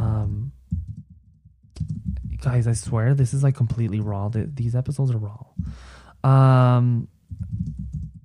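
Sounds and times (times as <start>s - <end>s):
typing on a computer keyboard: 0.8s - 2.4s, 7.3s - 8.2s
speech: 2.4s - 7.8s.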